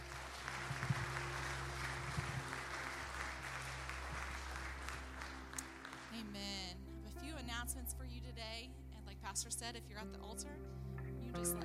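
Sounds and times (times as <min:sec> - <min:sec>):
audience clapping: 0:00.0 - 0:06.7
low hum: 0:00.0 - 0:11.4
speech: 0:06.2 - 0:11.6.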